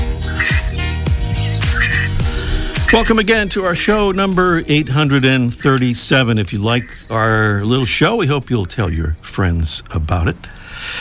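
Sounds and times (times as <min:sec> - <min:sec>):
glossy ibis Plegadis falcinellus croaking grunts: 0:00.0 - 0:08.3
speech: 0:02.9 - 0:10.9.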